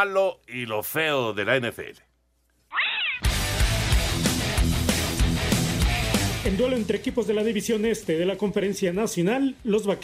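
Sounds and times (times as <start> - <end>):
speech: 0.0 - 2.1, 6.4 - 10.0
black cat meowing in an American football stadium: 2.7 - 3.3
loud thumping music with a steady beat: 3.2 - 10.0.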